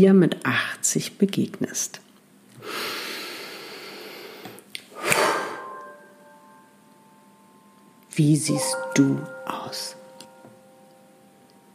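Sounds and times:
speech: 0.0 - 2.0, 8.2 - 10.0
slow deep breath during a guided meditation: 2.6 - 5.8.

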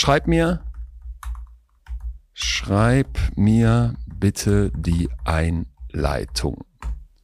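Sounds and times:
speech: 0.0 - 0.6, 2.4 - 7.0
typing on a computer keyboard: 0.5 - 7.2.

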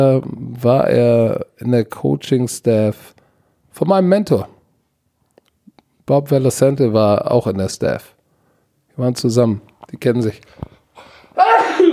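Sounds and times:
speech: 0.0 - 3.2, 3.8 - 4.6, 6.1 - 8.2, 9.0 - 11.6
sneeze: 11.4 - 11.9.

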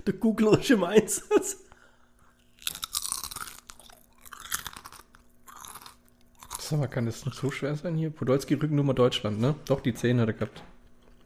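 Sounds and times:
speech: 0.0 - 1.7, 6.7 - 11.2
crunchy chips being chewed: 2.2 - 7.6.

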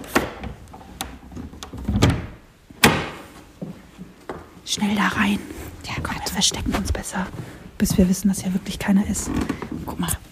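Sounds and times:
door opening with clunks and rattles: 0.0 - 3.3
speech: 4.7 - 10.2.

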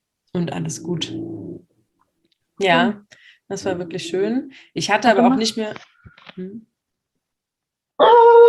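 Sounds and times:
speech: 0.4 - 1.7, 2.6 - 6.7
dog growling: 0.6 - 1.7, 3.6 - 4.5.

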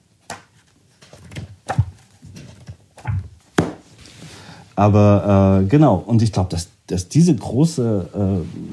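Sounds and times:
pages of a soft-covered early photobook flipping: 0.2 - 4.2
speech: 4.8 - 8.7.

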